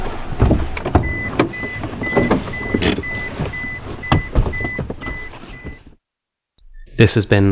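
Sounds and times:
car engine rumble: 0.0 - 6.0
car mechanical clunks and whirs: 0.0 - 6.0
electronic beeps: 1.0 - 5.8
speech: 7.0 - 7.5.

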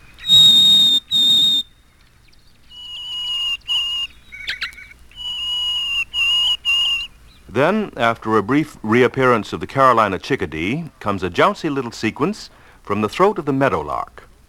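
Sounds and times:
Harris's sparrow song of single clear whistled notes: 0.0 - 7.4
speech: 7.6 - 14.2.

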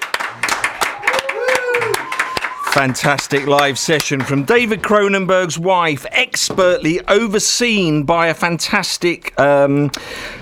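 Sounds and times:
studio engineers clapping after a live session: 0.0 - 4.9
studio engineers cheering: 0.4 - 4.7
whoop or whistle: 0.8 - 2.8
speech: 2.8 - 10.4.

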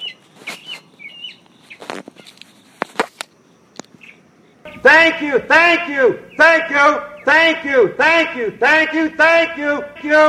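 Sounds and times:
faint rustling: 0.0 - 4.7
birds chirping and tweeting under a tree in South Carolina: 0.0 - 10.2
speech: 4.9 - 10.2.

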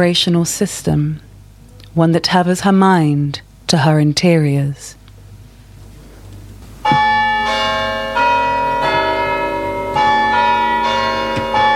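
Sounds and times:
speech: 0.0 - 1.3, 2.0 - 5.0
church bell chiming: 6.8 - 11.7.

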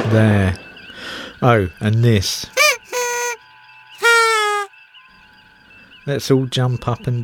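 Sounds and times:
speech: 0.1 - 0.7, 1.4 - 2.6, 6.1 - 7.2
fireworks sound effect high whistling tone falling in pitch: 4.0 - 4.7.

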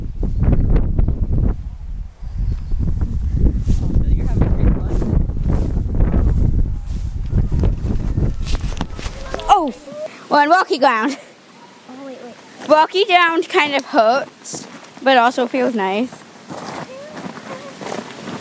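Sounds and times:
wind blowing across rocky ground buffeting the microphone: 0.0 - 10.0
speech: 10.4 - 11.3, 12.7 - 16.2.

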